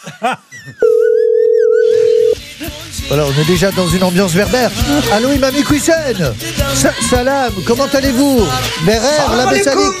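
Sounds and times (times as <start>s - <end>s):
speech: 0.0s - 1.3s, 2.6s - 9.9s
ringing tone of an outgoing telephone call: 0.8s - 2.4s.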